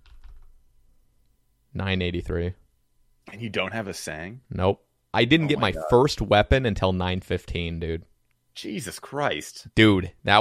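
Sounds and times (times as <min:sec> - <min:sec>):
typing on a computer keyboard: 0:00.0 - 0:00.5
speech: 0:01.8 - 0:02.6, 0:03.3 - 0:10.3.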